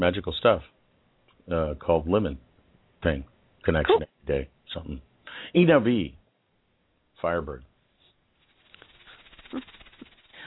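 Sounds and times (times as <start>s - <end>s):
speech: 0.0s - 0.8s, 1.5s - 6.2s, 7.2s - 7.7s, 9.5s - 9.8s
voice imitating a snake's hiss: 8.4s - 10.4s.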